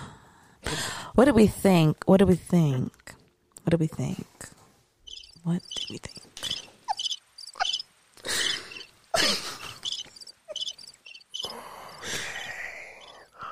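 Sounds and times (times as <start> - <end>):
speech: 1.2 - 4.6, 5.4 - 6.2
crickets chirping: 5.0 - 13.4.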